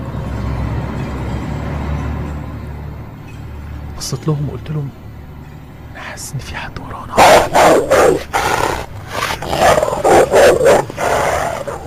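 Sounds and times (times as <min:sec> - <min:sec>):
speech: 0:04.0 - 0:05.0, 0:06.2 - 0:08.7
fierce dog barking: 0:07.2 - 0:11.8.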